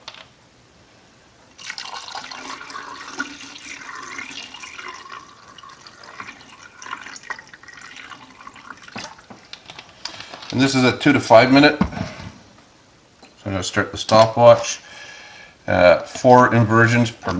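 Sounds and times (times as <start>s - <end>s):
photographic fixer pouring into developing tank: 1.6s - 9.6s
speech: 10.6s - 12.1s, 13.6s - 14.8s, 15.7s - 17.3s.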